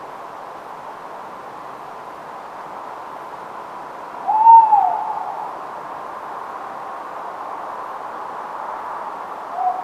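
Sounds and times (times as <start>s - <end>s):
constant background hiss: 0.0s - 9.8s
tawny owl hooting at night in Somerset: 4.2s - 5.6s, 9.5s - 9.8s.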